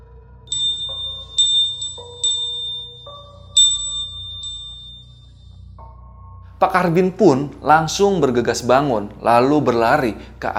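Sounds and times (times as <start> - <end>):
bell ringing: 0.5 - 5.4
low steady rumble: 0.5 - 5.5
speech: 6.6 - 10.5.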